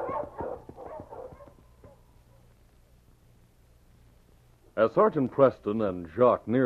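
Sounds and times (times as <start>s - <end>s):
husky sled dogs giving high whining yelps: 0.0s - 2.0s
husky sled dogs barking and yipping as the sled sets off: 0.0s - 2.5s
speech: 4.8s - 6.6s.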